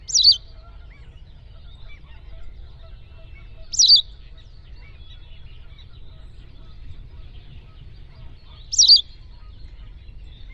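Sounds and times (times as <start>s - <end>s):
bird calling: 0.0s - 4.2s, 5.6s - 9.5s
low background noise: 0.0s - 10.5s.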